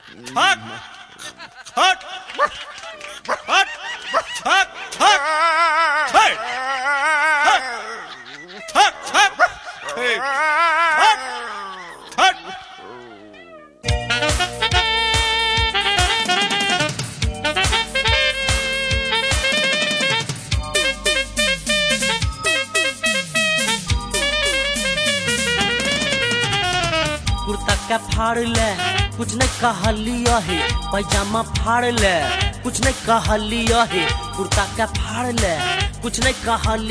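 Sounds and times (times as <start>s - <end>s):
laughter: 0.0s - 13.4s
speech: 0.2s - 0.9s, 28.3s - 36.9s
dog barking and yelping: 2.4s - 5.4s, 6.1s - 13.9s
music: 13.8s - 36.9s.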